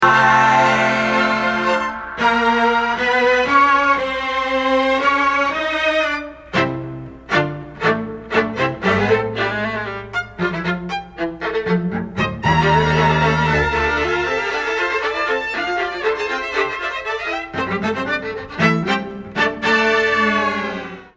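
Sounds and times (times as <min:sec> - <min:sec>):
vocals: 0:00.0 - 0:03.2
strings: 0:00.0 - 0:21.0.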